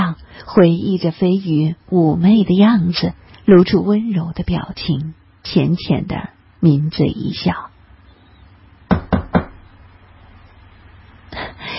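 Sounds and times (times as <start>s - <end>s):
speech: 0.5s - 7.7s
firm knocking on a door: 8.9s - 9.6s
soft bump: 8.9s - 9.6s.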